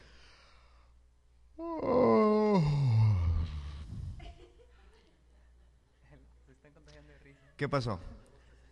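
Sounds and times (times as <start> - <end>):
several people yawning together: 1.6 - 4.2
speech: 7.6 - 8.2.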